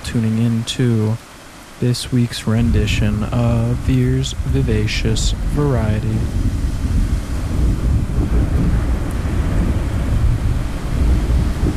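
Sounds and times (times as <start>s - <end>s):
windy rain-like hiss: 0.0s - 11.7s
speech: 0.1s - 6.6s
thunder rumbling from a brewing storm: 2.4s - 11.7s.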